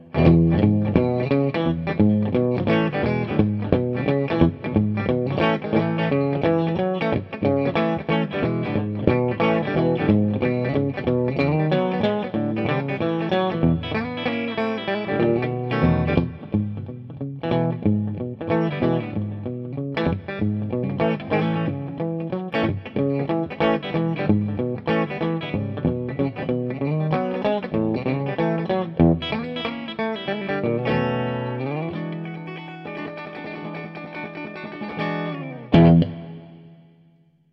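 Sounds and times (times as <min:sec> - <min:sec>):
vintage boogie on guitar: 0:00.0 - 0:36.7.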